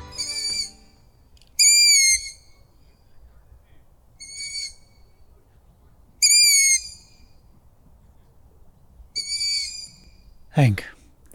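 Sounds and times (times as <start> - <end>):
young long-eared owls giving high squeaky wheezing calls in the Veluwe, Netherlands: 0.1 - 0.8, 1.6 - 5.5, 6.2 - 7.2, 9.1 - 10.3
speech: 10.6 - 11.3.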